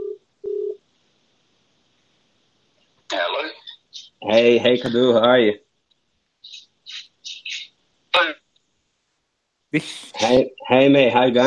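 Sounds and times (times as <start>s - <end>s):
telephone ringing tone through a phone on speakerphone: 0.0s - 0.8s
speech: 3.4s - 3.6s, 4.2s - 5.6s, 9.7s - 11.4s.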